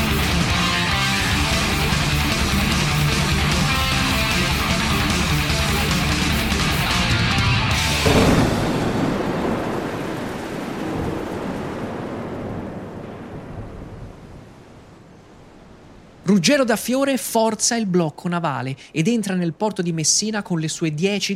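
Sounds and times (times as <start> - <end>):
heavy rain in a thunderstorm: 0.0 - 20.4
thunder crack rolling into a rumbling roar: 8.0 - 14.9
speech: 16.4 - 21.3.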